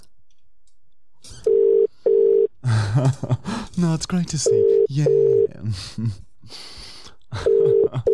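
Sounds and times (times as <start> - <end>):
telephone ringback tone on an outgoing call to a cleaning service: 1.5 - 2.5, 7.5 - 8.1
speech: 2.9 - 6.7.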